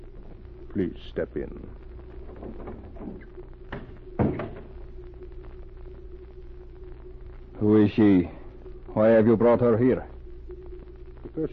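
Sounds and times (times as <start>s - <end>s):
speech: 0.8s - 3.8s, 7.6s - 8.4s, 9.0s - 10.1s, 11.4s - 11.5s
creaks: 2.1s - 4.8s
wooden door thumping shut: 2.3s - 4.7s.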